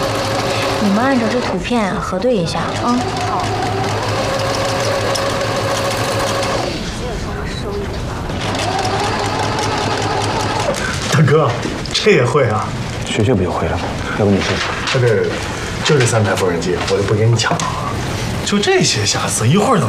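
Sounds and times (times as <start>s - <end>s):
sewing machine running while altering and repairing clothes: 0.0s - 7.0s, 8.3s - 11.3s
voices: 0.8s - 3.9s, 6.8s - 19.8s.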